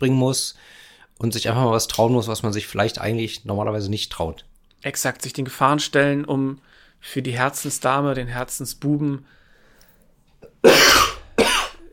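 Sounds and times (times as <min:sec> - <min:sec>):
speech: 0:00.0 - 0:09.4, 0:10.6 - 0:11.1
faint intake of breath: 0:00.6 - 0:01.1, 0:09.3 - 0:10.2
forceful rasping coughs: 0:10.4 - 0:11.9.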